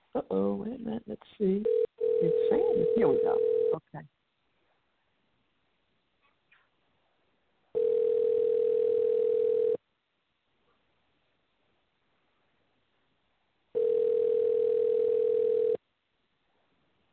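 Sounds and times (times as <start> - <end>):
speech: 0.1 - 4.2
outgoing phone call ringback tone, unanswered: 1.7 - 3.8, 7.8 - 9.8, 13.8 - 15.8.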